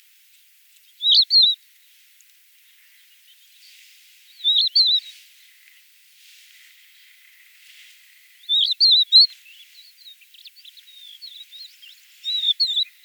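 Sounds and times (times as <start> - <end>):
crested lark Galerida cristata calling: 1.0 - 1.6, 4.4 - 5.1, 8.5 - 9.3, 11.0 - 13.0.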